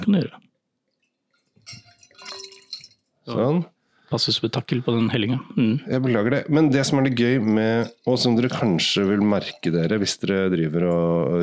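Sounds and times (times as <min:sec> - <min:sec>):
speech: 0:00.1 - 0:00.4, 0:03.3 - 0:11.4
wine pouring into a glass: 0:01.4 - 0:03.1, 0:06.5 - 0:11.3.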